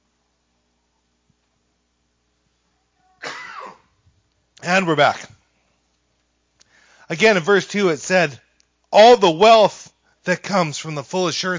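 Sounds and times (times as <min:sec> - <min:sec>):
harsh spluttering cough after choking: 0:03.2 - 0:04.0
speech: 0:04.7 - 0:05.3, 0:07.1 - 0:11.5.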